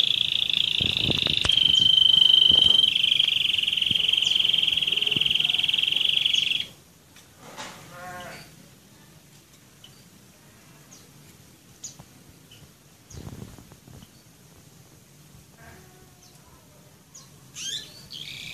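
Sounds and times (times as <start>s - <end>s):
roller canary singing a continuous rolling trill: 0.0s - 6.8s.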